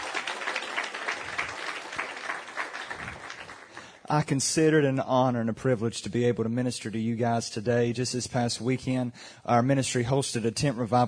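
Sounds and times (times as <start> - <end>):
church audience applauding: 0.0 - 4.0
speech: 4.1 - 11.0.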